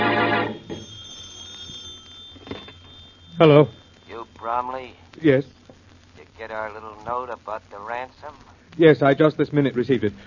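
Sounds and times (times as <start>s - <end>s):
telephone bell ringing: 0.0s - 4.7s
faint hum: 0.0s - 10.2s
speech: 3.4s - 3.8s, 4.4s - 5.6s, 6.4s - 10.2s.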